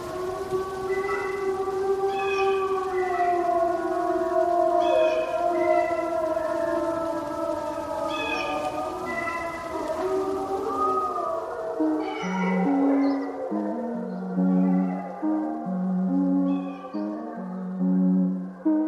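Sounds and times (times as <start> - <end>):
several wolves howling together: 0.0 - 18.8
steady hiss: 0.0 - 18.8.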